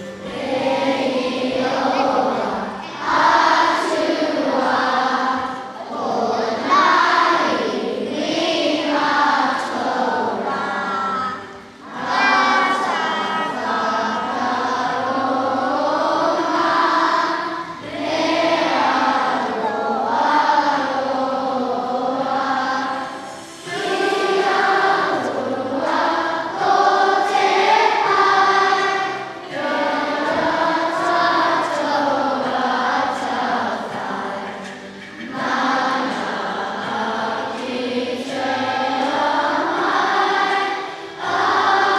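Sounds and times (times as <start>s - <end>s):
large group of schoolchildren singing the national anthem in unison in a big indoor hall: 0.0s - 41.9s.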